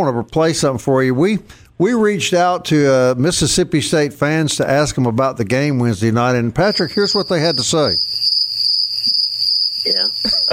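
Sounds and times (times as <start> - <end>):
speech: 0.0 - 8.3, 9.8 - 10.5
crickets chirping: 6.6 - 10.5.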